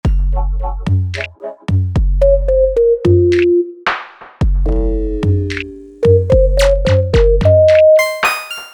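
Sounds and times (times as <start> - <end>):
MIDI playback loop: 0.0 - 8.7.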